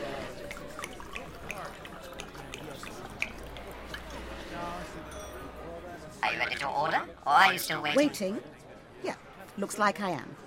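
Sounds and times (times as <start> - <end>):
drink poured into a glass: 0.0 - 4.5
low chatter in a busy room: 0.0 - 10.4
glass clink: 5.0 - 5.6
speech: 7.4 - 10.4.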